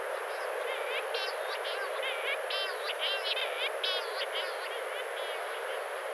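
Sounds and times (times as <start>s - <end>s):
great tit calling: 0.1s - 6.0s.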